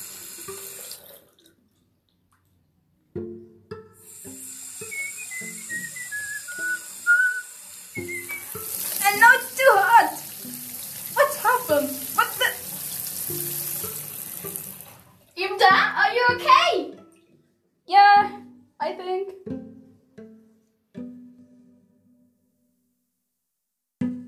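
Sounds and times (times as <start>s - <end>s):
water gushing from a tap: 0.0s - 1.6s, 4.1s - 15.4s
person talking: 9.0s - 10.2s, 11.2s - 12.6s, 15.4s - 17.0s, 17.9s - 19.3s.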